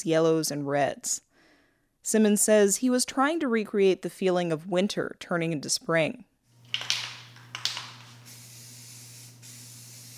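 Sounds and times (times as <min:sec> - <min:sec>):
speech: 0:00.0 - 0:01.3, 0:02.0 - 0:06.9
low steady electrical hum: 0:06.5 - 0:10.1
spray paint hissing onto a canvas through stencils: 0:06.7 - 0:10.1.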